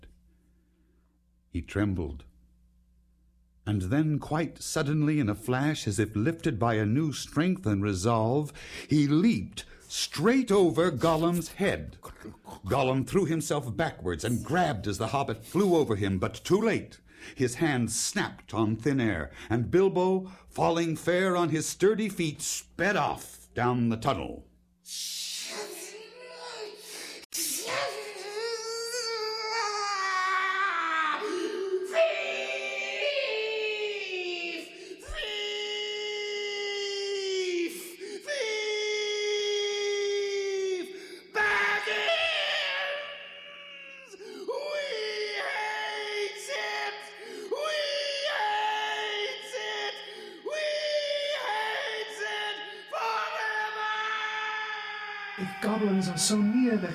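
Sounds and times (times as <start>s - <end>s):
speech: 1.6s - 2.3s, 3.7s - 25.2s
voice shrieking and wailing in anguished cries: 27.6s - 37.6s, 38.3s - 46.9s, 47.5s - 56.9s.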